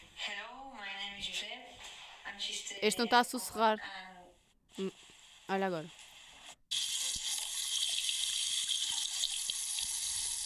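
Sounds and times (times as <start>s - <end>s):
speech: 2.4s - 4.1s, 4.8s - 6.0s
tap water running as hands are rinsed: 6.7s - 10.4s.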